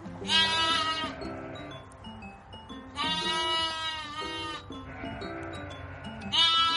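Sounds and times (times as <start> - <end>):
ewe with a lamb bleating loudly: 0.2 - 1.8, 3.0 - 6.7.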